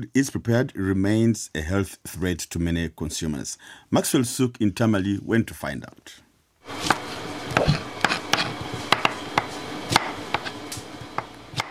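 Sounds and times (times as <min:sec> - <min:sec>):
speech: 0:00.0 - 0:06.2
faint restaurant kitchen hum: 0:06.6 - 0:11.6
knife chopping vegetables on a cutting board in a restaurant kitchen in Tamale: 0:06.7 - 0:11.6.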